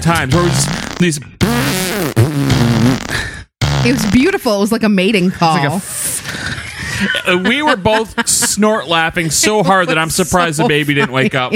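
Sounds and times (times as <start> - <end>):
speech: 0.0 - 1.8, 3.8 - 6.4, 7.0 - 11.5
voice imitating farts: 0.3 - 4.5
laughter: 5.5 - 11.5.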